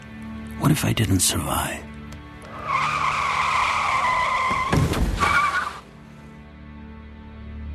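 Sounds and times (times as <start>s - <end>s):
speech: 0.6s - 1.9s
big car skidding with tires squealing: 2.4s - 5.9s.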